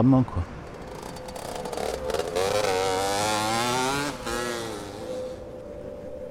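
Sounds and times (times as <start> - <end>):
speech: 0.0 - 0.5
small moped engine revving and idling: 0.5 - 5.5.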